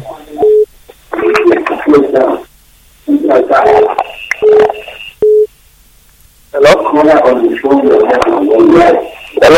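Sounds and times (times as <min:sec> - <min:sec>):
radio playing in the background of a telephone line: 0:00.0 - 0:05.2, 0:06.6 - 0:09.5
speech: 0:07.0 - 0:09.5.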